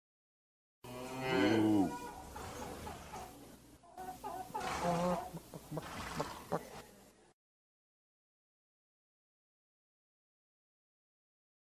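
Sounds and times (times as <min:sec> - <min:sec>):
cow mooing: 0:00.8 - 0:02.1
quieter farmyard sounds: 0:00.8 - 0:07.4.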